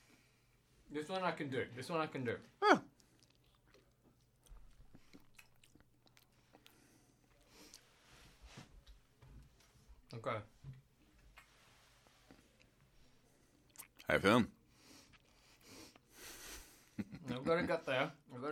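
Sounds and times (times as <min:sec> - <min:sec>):
speech: 0:00.9 - 0:02.8, 0:10.2 - 0:10.5, 0:14.1 - 0:14.6, 0:17.5 - 0:18.5
wet chewing and crunchy bites of an olive: 0:02.9 - 0:07.9, 0:13.6 - 0:14.1, 0:14.8 - 0:16.1.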